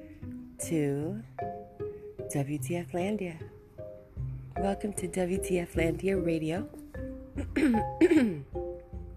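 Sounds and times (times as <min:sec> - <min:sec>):
speech: 0:00.7 - 0:01.4, 0:02.3 - 0:03.6, 0:04.6 - 0:06.8, 0:07.4 - 0:08.5
voiced throat-clearing grunts: 0:07.4 - 0:08.5.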